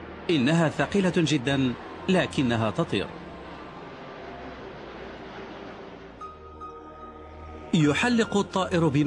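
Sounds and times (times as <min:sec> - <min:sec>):
large transport plane engines roaring before takeoff: 0:00.0 - 0:06.2
speech: 0:00.3 - 0:03.2, 0:07.7 - 0:09.0.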